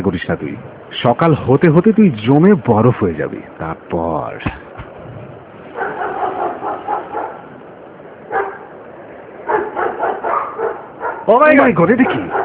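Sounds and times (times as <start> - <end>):
speech: 0.1 - 4.6, 11.3 - 12.4
stray street dog barking: 5.7 - 7.5, 8.3 - 8.7, 9.4 - 11.3, 11.9 - 12.4.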